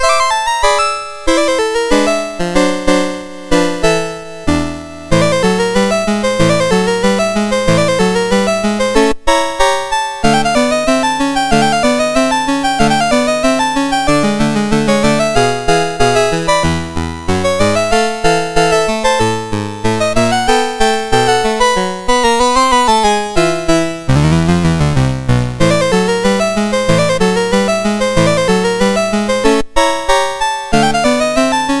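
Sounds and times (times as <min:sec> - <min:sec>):
chiptune piece played on a MOS6581R2 sound chip: 0:00.0 - 0:31.7.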